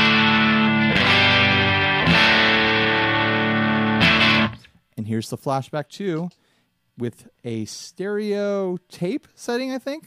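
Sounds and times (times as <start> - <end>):
distorted electric guitar chords through a guitar amplifier: 0.0 - 4.7
speech: 5.2 - 6.4, 7.0 - 10.0.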